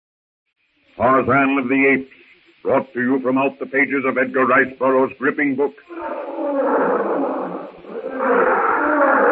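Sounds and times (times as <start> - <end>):
speech: 1.0 - 7.2
big wild animal roaring: 5.9 - 9.3.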